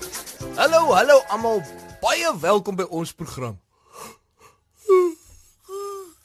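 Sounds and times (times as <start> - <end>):
speech: 0.6 - 3.6
person yawning: 4.8 - 6.2.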